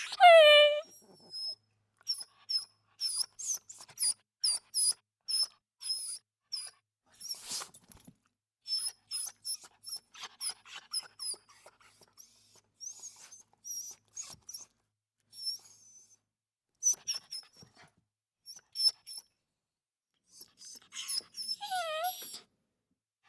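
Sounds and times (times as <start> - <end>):
small dog whimpering: 0.2 - 0.8, 20.6 - 22.4.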